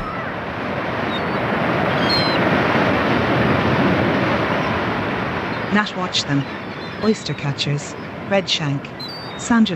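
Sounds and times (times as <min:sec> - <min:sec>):
ocean waves breaking on the shore: 0:00.0 - 0:09.7
speech: 0:05.7 - 0:09.7.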